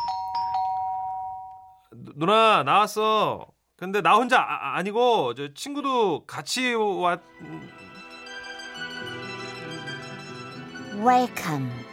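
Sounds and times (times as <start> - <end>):
electronic doorbell at a home chiming: 0.0 - 1.9
speech: 2.0 - 8.0, 11.0 - 11.9.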